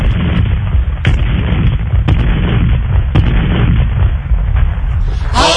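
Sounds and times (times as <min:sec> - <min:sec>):
cannon fire: 0:00.0 - 0:05.4.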